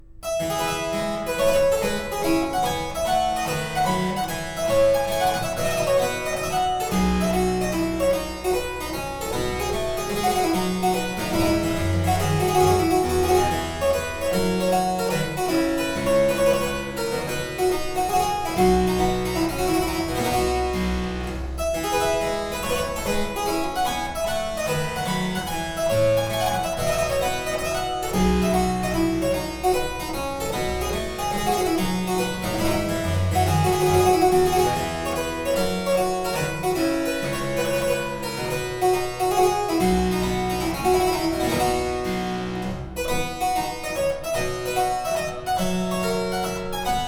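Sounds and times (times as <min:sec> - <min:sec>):
harpsichord courante in F major: 0:00.2 - 0:47.0.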